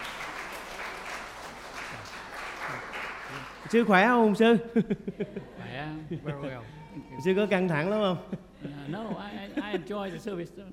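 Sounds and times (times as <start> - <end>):
church congregation applauding: 0.0 - 4.4
speech: 3.7 - 10.7
laughter: 4.5 - 7.2, 7.8 - 10.7.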